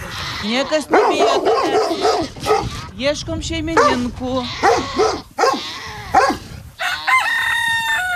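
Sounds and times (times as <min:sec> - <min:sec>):
speech: 0:00.4 - 0:05.3
rooster crowing on a small farm: 0:06.8 - 0:08.1.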